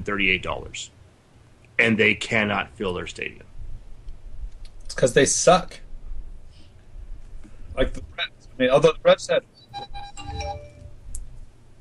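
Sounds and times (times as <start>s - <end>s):
speech: 0.0s - 1.0s, 1.8s - 3.5s, 4.9s - 5.8s, 7.8s - 10.6s
low rumble: 0.0s - 9.3s
mobile phone ringtone melody of bright electronic tones: 9.7s - 10.9s.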